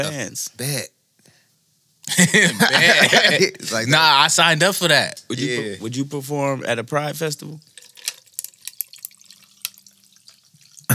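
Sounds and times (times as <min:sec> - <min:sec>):
speech: 0:00.0 - 0:01.0, 0:02.1 - 0:07.7
laughter: 0:02.1 - 0:04.5
Jameson whiskey pouring into a glass: 0:07.4 - 0:10.9.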